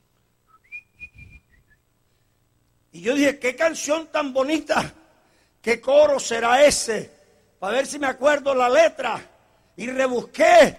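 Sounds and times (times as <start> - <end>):
boy whistling a bright cheerful melody walking home from school: 0.5 - 1.8
speech: 3.0 - 5.0, 5.6 - 10.7.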